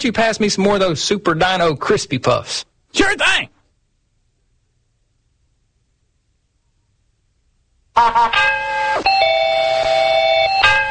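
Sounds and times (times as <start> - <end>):
speech: 0.0 - 3.5, 8.0 - 8.6
electronic mail bell chiming ding-dong: 9.1 - 10.8.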